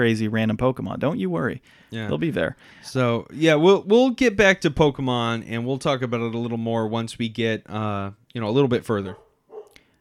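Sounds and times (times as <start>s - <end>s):
speech: 0.0s - 9.2s
faint dog bark: 9.1s - 9.8s.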